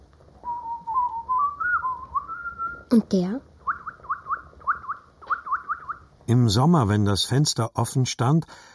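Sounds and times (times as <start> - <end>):
grandfather whistling an imitation of birdsong: 0.4 - 2.9, 3.6 - 6.1
speech: 2.9 - 3.5, 6.3 - 8.7.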